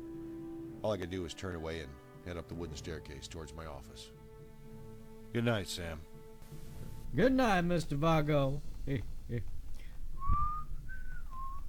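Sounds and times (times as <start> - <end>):
speech: 0.8 - 4.2, 5.3 - 9.6
man whistling a slow wavering tune: 10.2 - 11.6.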